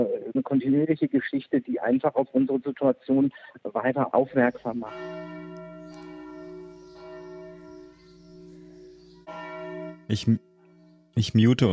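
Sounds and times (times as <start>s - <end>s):
speech: 0.0s - 5.5s, 10.1s - 10.5s, 11.2s - 11.7s
church bells ringing: 4.3s - 11.7s.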